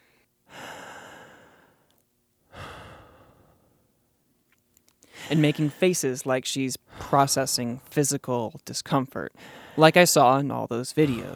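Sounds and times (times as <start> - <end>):
deep breathing: 0.0 - 3.9, 5.0 - 5.5, 6.8 - 7.9, 9.4 - 9.9
speech: 5.3 - 11.3.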